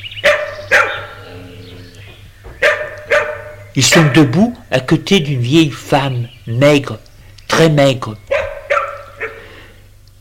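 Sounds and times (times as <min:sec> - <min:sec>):
two huge dogs barking deeply: 0:00.2 - 0:02.0, 0:02.6 - 0:04.4, 0:08.3 - 0:09.5
speech: 0:03.8 - 0:08.3.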